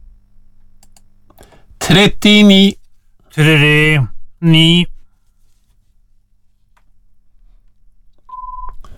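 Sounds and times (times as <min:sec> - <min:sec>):
speech: 0:01.9 - 0:02.8, 0:03.4 - 0:04.9
telephone tone as a call is placed: 0:08.3 - 0:08.8.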